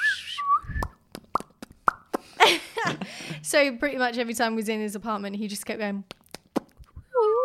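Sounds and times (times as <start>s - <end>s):
person whistling short bright notes to a green pet parrot: 0.0s - 1.0s
mouth pops and clicks: 0.5s - 2.3s, 6.0s - 7.0s
speech: 3.5s - 6.2s.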